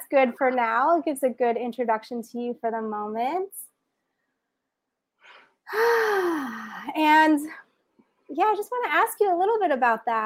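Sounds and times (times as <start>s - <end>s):
speech: 0.1s - 3.6s, 5.7s - 7.6s, 8.3s - 10.2s
person taking a brief soft inhale during breathwork: 5.2s - 6.9s
person's voiced sigh-like exhale: 5.2s - 6.9s.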